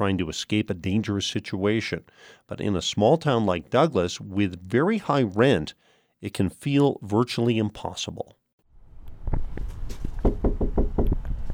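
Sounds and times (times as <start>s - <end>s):
speech: 0.0s - 8.4s, 9.3s - 9.8s
firm knocks on a wooden apartment door: 10.2s - 11.2s.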